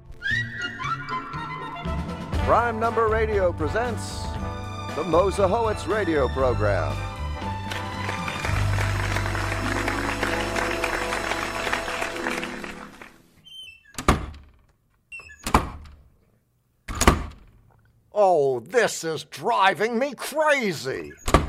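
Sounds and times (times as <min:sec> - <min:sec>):
busy stretch of music: 0:00.0 - 0:13.4
speech: 0:02.5 - 0:04.3, 0:05.0 - 0:07.1, 0:18.3 - 0:21.2
studio doors slamming shut: 0:13.9 - 0:14.6, 0:15.3 - 0:16.1, 0:16.9 - 0:17.6, 0:21.1 - 0:21.4.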